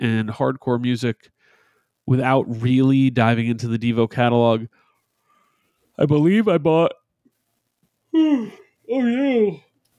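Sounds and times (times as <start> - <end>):
speech: 0.0 - 1.4, 2.1 - 4.8, 6.0 - 7.0, 8.1 - 9.7
person yawning: 8.1 - 8.7.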